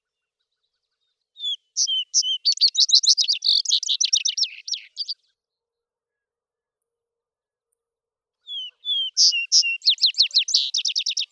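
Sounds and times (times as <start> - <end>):
Vesper sparrow singing whistled notes and fast trilled notes: 1.4 - 5.3, 8.4 - 11.3.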